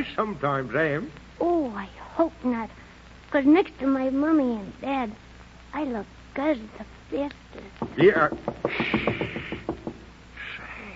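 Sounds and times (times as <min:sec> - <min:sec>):
speech: 0:00.0 - 0:09.2
sharp knocks on a door: 0:07.8 - 0:10.2.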